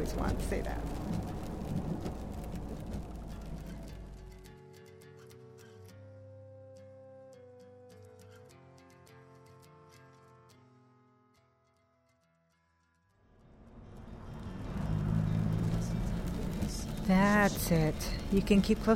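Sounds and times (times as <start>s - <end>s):
speech: 0.0s - 2.2s, 17.4s - 18.9s
rushing wash of road and water noise: 0.0s - 4.3s, 13.5s - 18.9s
car driving through steady rain: 0.0s - 4.5s, 13.4s - 18.9s.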